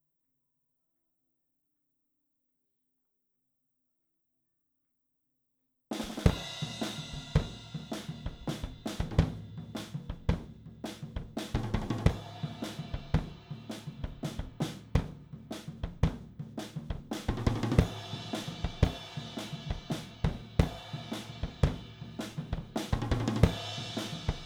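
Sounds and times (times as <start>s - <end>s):
drums recorded with an AKG414 microphone: 5.9s - 24.4s.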